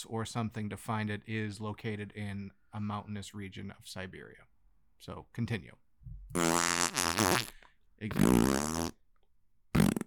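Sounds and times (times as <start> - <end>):
speech: 0.0 - 9.0
person imitating farting with buzzy bursts: 6.3 - 9.0, 9.8 - 10.0.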